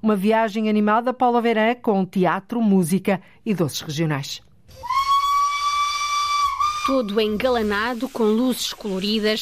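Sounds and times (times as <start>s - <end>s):
speech: 0.0s - 4.9s, 6.9s - 9.4s
historic steam locomotive whistle on Christmas train in Portugal: 4.7s - 7.6s
escaping steam hissing from steam locomotive: 4.9s - 9.4s.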